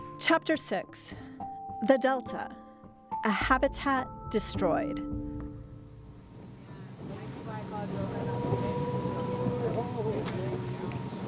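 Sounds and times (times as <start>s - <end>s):
speech: 0.2s - 2.6s, 3.2s - 5.2s
small motorboat engine droning: 5.8s - 11.2s
water noise: 5.9s - 11.2s
wind noise: 6.0s - 11.2s
faint indistinct voices: 6.6s - 11.2s.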